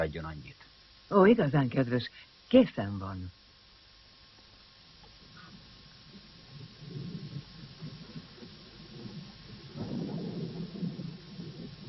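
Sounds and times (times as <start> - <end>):
speech: 0.0 - 3.4
low thunder rumbling from a storm: 6.1 - 11.8.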